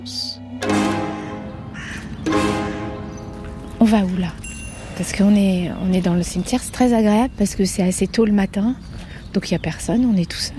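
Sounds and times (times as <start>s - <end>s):
speech: 0.0s - 0.8s, 3.8s - 4.4s, 5.0s - 10.5s
crows cawing in a cemetery: 1.2s - 3.8s.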